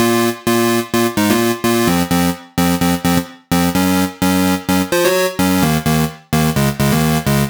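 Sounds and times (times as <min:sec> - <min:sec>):
analog synthesizer at 128 BPM: 0:00.0 - 0:07.4.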